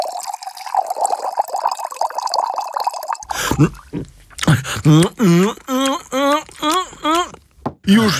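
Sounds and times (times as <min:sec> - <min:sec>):
water pouring into a vessel: 0:00.0 - 0:03.3
person gulping water: 0:00.0 - 0:08.1
speech: 0:03.6 - 0:05.9, 0:07.9 - 0:08.1.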